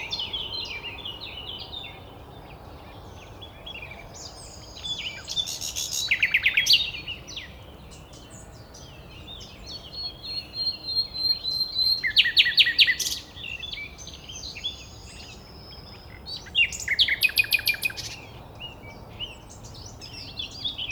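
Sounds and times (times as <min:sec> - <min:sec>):
Luscinia megarhynchos common nightingale singing: 0:00.0 - 0:20.8.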